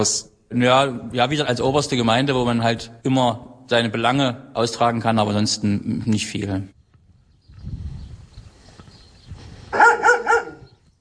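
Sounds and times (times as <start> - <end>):
speech: 0.0 - 6.8
watchful dogs barking in a village: 9.7 - 10.8.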